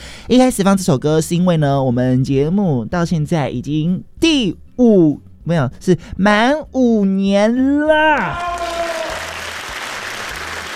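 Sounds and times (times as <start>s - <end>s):
speech: 0.3s - 8.6s
applause: 8.3s - 10.7s.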